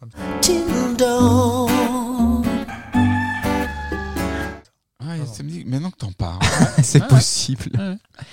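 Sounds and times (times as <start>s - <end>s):
loud music track with warbling sustained tones: 0.0s - 4.6s
speech: 0.1s - 1.4s, 6.8s - 8.3s
hen-like clucking and squawking: 2.7s - 4.6s
laughter: 6.4s - 8.0s.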